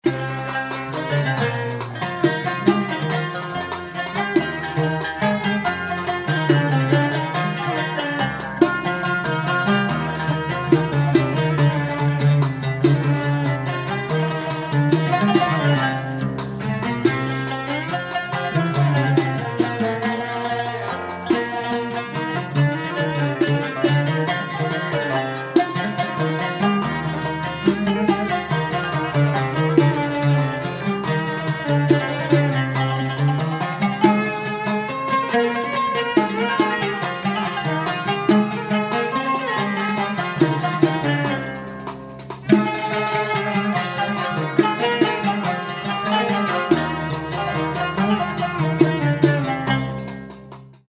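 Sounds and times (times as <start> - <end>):
instrumental samai music in maqam bayati: 0.0 - 50.8.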